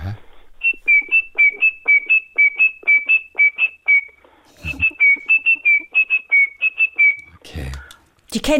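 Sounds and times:
tit singing a metallic two-note phrase: 0.6 - 7.3
speech: 8.4 - 8.5.

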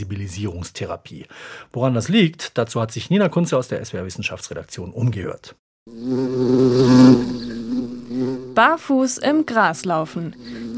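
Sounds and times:
speech: 0.0 - 7.4, 8.6 - 10.7
bee buzzing: 5.9 - 10.7.

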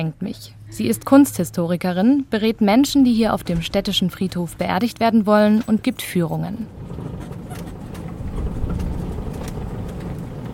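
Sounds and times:
speech: 0.0 - 7.2
faint rattles and clicks: 3.2 - 10.5
golf-cart-style vehicle motor humming: 6.7 - 10.5.

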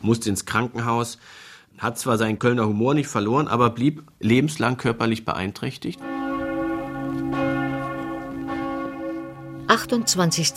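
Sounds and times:
speech: 0.0 - 6.2, 9.7 - 10.5
parish church bells ringing for a funeral: 5.9 - 10.5.

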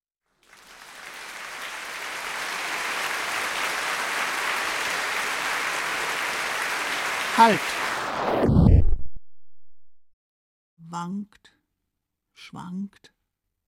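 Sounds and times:
crowd clapping: 0.3 - 8.2
speech: 7.4 - 8.4, 11.0 - 11.6, 12.4 - 13.2.

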